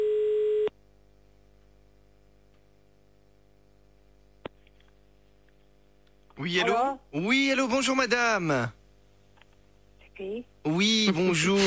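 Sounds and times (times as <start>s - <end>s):
telephone call tone while a call is placed: 0.0s - 0.7s
quiet telephone line hum: 0.0s - 11.6s
speech: 6.5s - 8.8s, 10.3s - 11.6s.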